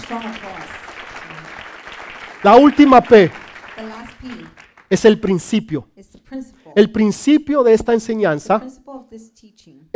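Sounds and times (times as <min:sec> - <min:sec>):
audience applause: 0:00.0 - 0:05.2
speech: 0:00.1 - 0:01.4, 0:02.4 - 0:09.4.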